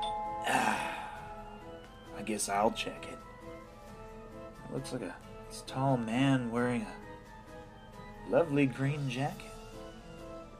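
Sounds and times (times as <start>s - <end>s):
doorbell chime ringing: 0.0s - 1.8s
speech: 2.3s - 3.3s, 4.7s - 7.0s, 8.3s - 9.5s.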